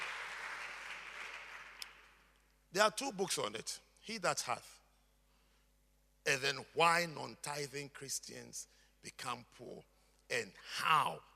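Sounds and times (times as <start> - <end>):
audience clapping: 0.0 - 2.3
speech: 2.7 - 4.8, 6.3 - 11.3.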